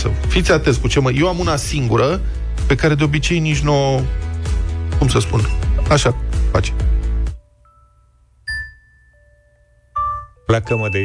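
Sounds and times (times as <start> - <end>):
speech: 0.0 - 6.9, 10.5 - 11.0
phone alarm ringtone chiming: 7.6 - 11.0.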